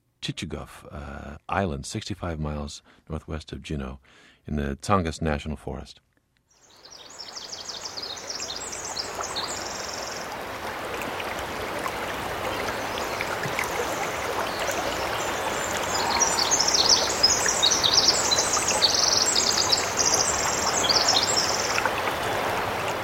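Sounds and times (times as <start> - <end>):
speech: 0.2 - 6.0
high bird calls chirping and trilling in a rainforest: 6.6 - 10.4, 12.3 - 22.5
stream water flowing in a rainforest on Chichagof Island: 6.6 - 23.0.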